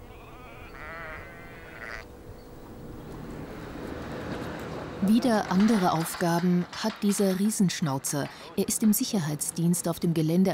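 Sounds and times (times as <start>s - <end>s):
flock of sheep bleating: 0.0s - 2.1s
speech: 5.0s - 10.5s.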